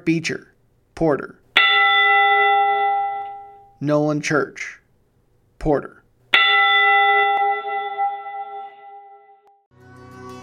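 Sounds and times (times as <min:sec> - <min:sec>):
speech: 0:00.0 - 0:01.4, 0:03.8 - 0:04.8, 0:05.6 - 0:06.0
large church bell tolling: 0:01.6 - 0:03.8, 0:06.4 - 0:09.7.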